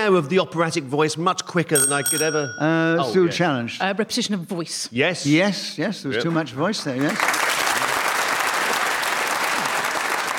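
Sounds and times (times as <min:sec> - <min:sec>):
speech: 0:00.0 - 0:07.4
studio audience clapping after a correct challenge in a panel game: 0:06.2 - 0:10.3.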